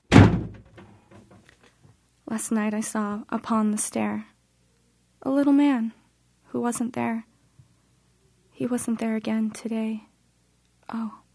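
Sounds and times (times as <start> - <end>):
door rattling as it settles: 0.0 - 1.4
door slamming shut with a heavy booming thud: 0.1 - 1.3
speech: 2.3 - 4.3, 5.2 - 6.0, 6.6 - 7.3, 8.6 - 10.1, 10.9 - 11.2.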